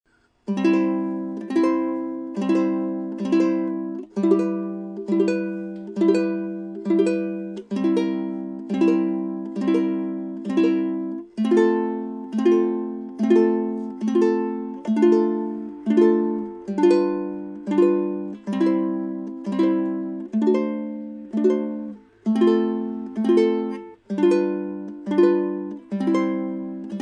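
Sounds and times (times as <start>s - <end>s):
ukulele playing at a concert: 0.4s - 26.9s.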